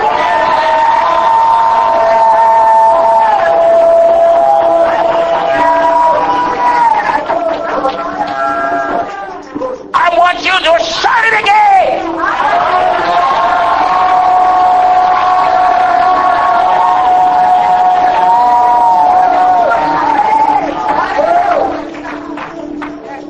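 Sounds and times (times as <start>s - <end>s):
large audience shouting hallelujah together: 0.0s - 9.4s, 10.1s - 22.0s.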